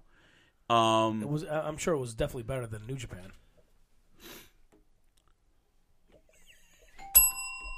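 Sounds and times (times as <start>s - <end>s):
speech: 0.7s - 3.4s
person sniffing: 4.2s - 4.6s
doorbell chime: 7.0s - 7.7s.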